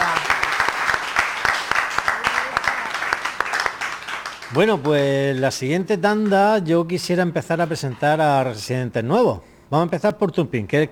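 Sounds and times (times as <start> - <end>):
room full of people applauding: 0.0 - 5.4
speech: 4.5 - 10.8.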